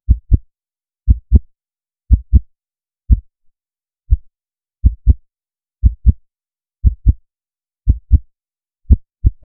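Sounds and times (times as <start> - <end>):
heartbeat stabilizing: 0.1 - 0.5, 1.1 - 1.5, 2.1 - 2.5, 3.1 - 3.4, 4.1 - 5.2, 5.8 - 6.2, 6.8 - 7.2, 7.8 - 8.3, 8.9 - 9.5.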